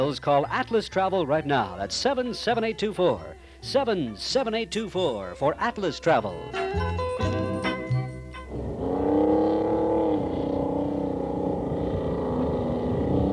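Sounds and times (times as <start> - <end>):
speech: 0.0 - 7.0
Polaris truck engine driving: 5.6 - 13.3.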